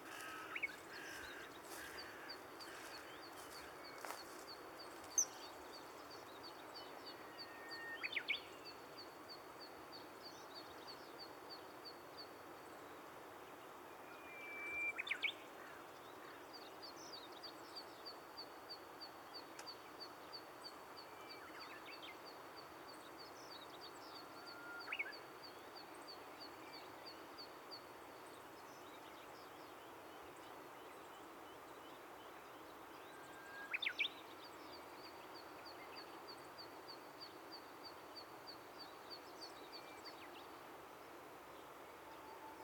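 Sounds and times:
bird calls: 0.0s - 5.6s
footsteps through an overgrown riverside thicket: 0.0s - 6.1s
steady outdoor hiss: 0.0s - 42.6s.

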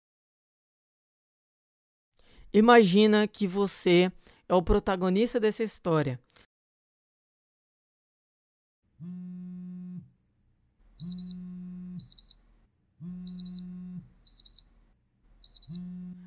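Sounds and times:
speech: 2.5s - 6.5s
alarm clock ringing with low buzzing tones and high-pitched beeps: 12.0s - 12.4s, 13.3s - 14.7s, 15.4s - 16.0s.

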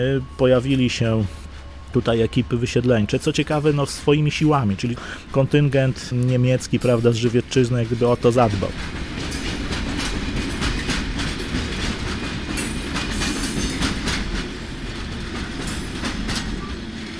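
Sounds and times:
speech: 0.0s - 9.0s
train wheels clattering on rails: 3.4s - 17.1s.

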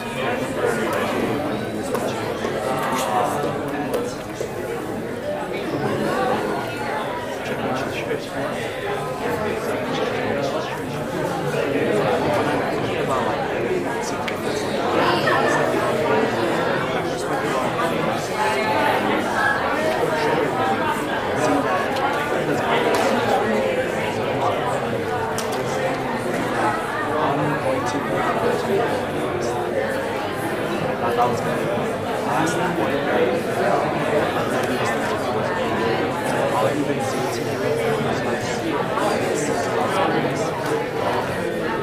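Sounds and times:
audience chatting in small groups: 0.0s - 41.8s.

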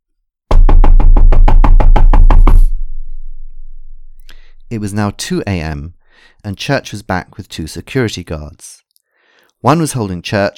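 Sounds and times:
loud rapid knocking on a door: 0.5s - 2.8s
speech: 4.7s - 8.8s, 9.6s - 10.5s.

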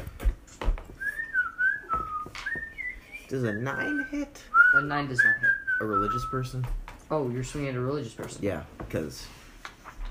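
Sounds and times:
person whistling a tuneful line during a tabletop role-playing game: 1.0s - 6.5s
speech: 3.3s - 9.4s.

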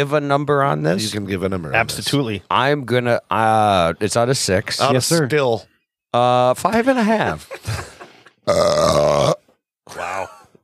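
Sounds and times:
speech: 0.0s - 7.9s, 8.5s - 10.4s
laughter: 6.8s - 8.4s
long loud rumbling burp: 8.5s - 9.5s.

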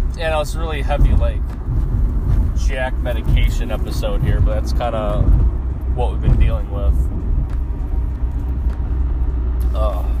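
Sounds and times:
car engine rumble and road noise in a cabin driving in traffic: 0.0s - 10.1s
speech: 0.2s - 1.9s, 2.6s - 7.3s, 9.6s - 10.1s.

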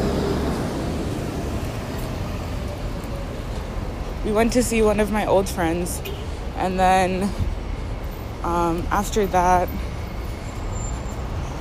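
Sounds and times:
road traffic with cars passing by outside: 0.0s - 11.5s
speech: 4.2s - 7.5s, 8.4s - 9.9s.

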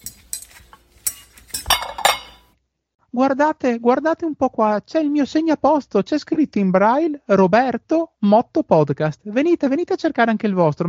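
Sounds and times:
ceramic plates clinking and knocking as they are handled in a medieval castle: 0.0s - 2.5s
speech: 3.2s - 10.8s.

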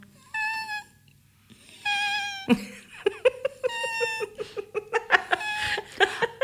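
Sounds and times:
voice imitating the high-pitched whining of a dog: 0.2s - 1.0s, 1.8s - 2.6s, 3.6s - 4.6s, 5.2s - 6.0s
laughter: 2.5s - 6.4s.

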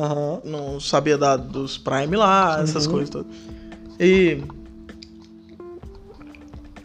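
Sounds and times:
speech: 0.0s - 4.6s
person sipping and swallowing water: 2.7s - 6.8s.

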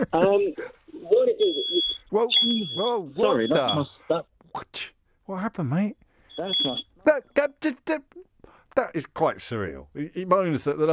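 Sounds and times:
voice heard faintly through a phone line: 0.0s - 4.0s
speech: 0.0s - 8.2s, 8.8s - 10.9s
shrill smoke alarm beep over a phone line: 1.4s - 4.1s, 6.2s - 7.5s.

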